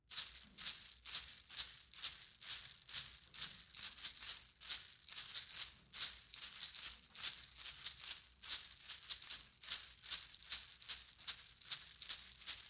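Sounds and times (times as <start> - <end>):
pair of bell rows braided on rope: 0.1 - 12.6.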